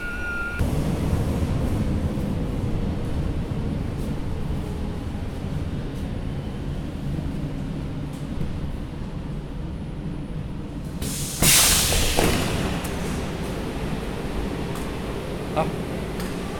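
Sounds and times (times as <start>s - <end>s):
tonal beep: 0.0s - 0.6s
moving metro train rumbling heard from inside: 0.0s - 16.5s.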